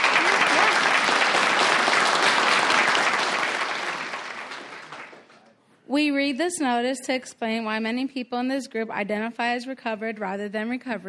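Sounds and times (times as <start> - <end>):
audience applause: 0.0 - 5.4
speech: 6.0 - 11.0.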